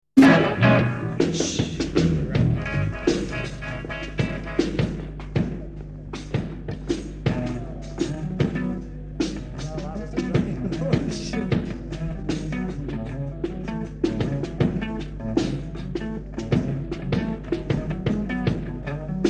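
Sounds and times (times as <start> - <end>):
rhythmic instrumental music: 0.2 - 19.2.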